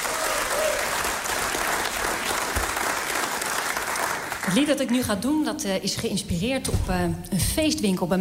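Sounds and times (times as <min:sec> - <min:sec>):
crowd applauding a singer at a grand piano: 0:00.0 - 0:05.0
speech: 0:04.5 - 0:08.2.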